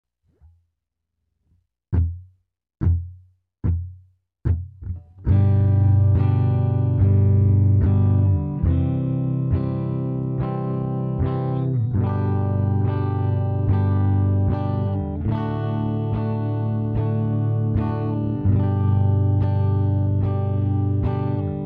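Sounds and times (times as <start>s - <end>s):
guitar low E note: 5.3s - 21.6s.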